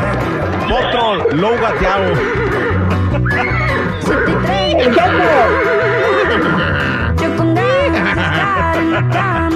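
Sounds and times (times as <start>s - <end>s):
busy steady music: 0.0s - 9.5s
horse neighing: 0.5s - 7.4s
laughter: 0.6s - 9.5s
speech: 1.1s - 3.5s, 4.8s - 5.8s.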